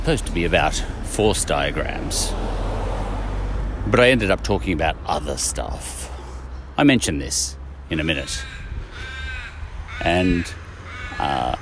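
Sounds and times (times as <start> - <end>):
speech: 0.0 - 2.7, 3.8 - 6.1, 6.8 - 8.6, 10.0 - 10.6, 11.2 - 11.6
crow cawing: 8.2 - 11.6.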